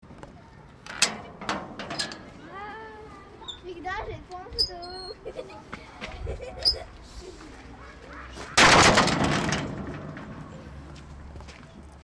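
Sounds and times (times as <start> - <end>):
gate slamming: 0.9 - 2.3, 8.6 - 10.5.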